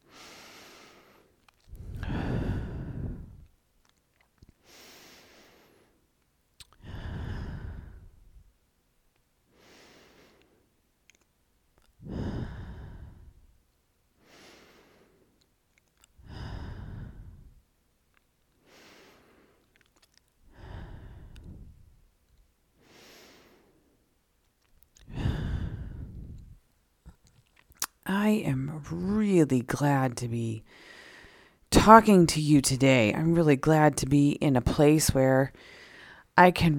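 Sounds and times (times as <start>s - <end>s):
deep breathing in through nose and out through mouth: 0.0s - 3.5s, 4.6s - 6.0s, 6.7s - 8.5s, 9.5s - 10.7s, 11.9s - 13.5s, 14.2s - 15.4s, 16.2s - 17.6s, 18.6s - 22.0s, 22.8s - 24.0s, 25.0s - 26.6s, 30.7s - 31.7s, 35.6s - 36.4s
speech: 28.1s - 30.9s, 31.8s - 35.8s, 36.4s - 36.7s.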